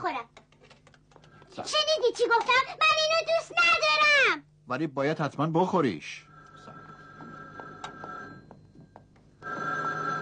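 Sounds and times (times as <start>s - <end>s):
quiet clatter: 0.0s - 1.6s, 6.3s - 10.2s
speech: 1.6s - 6.3s
telephone ringing with a bright electronic tone: 5.8s - 10.2s.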